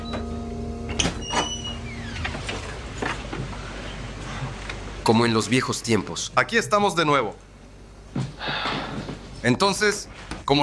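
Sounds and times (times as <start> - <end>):
steady low mechanical hum: 0.0 - 10.6
door being pushed shut: 0.9 - 3.2
speech: 5.0 - 7.5, 9.4 - 10.6.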